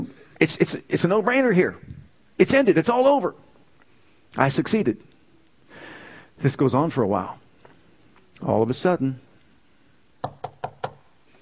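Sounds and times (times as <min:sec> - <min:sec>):
speech: 0:00.4 - 0:03.4, 0:04.3 - 0:05.1, 0:06.4 - 0:07.4, 0:08.4 - 0:09.2
sharp knocks on a door: 0:10.2 - 0:11.0.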